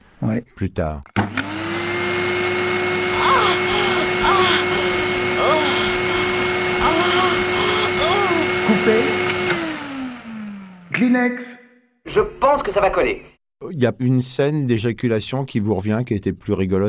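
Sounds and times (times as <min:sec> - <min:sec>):
speech: 0:00.3 - 0:01.4, 0:11.0 - 0:16.8
vacuum cleaner running: 0:01.2 - 0:11.0
voices murmuring: 0:03.1 - 0:09.4.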